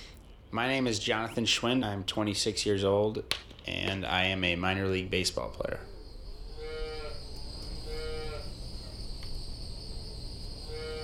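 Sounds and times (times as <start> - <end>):
speech: 0.5 - 5.9
faint insect-like buzz: 5.8 - 11.0
cows mooing on a dairy farm: 6.6 - 8.6, 10.7 - 11.0.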